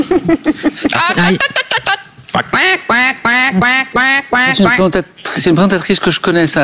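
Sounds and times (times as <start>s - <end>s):
speech: 0.2s - 6.6s
man imitating duck quacks: 0.9s - 5.4s.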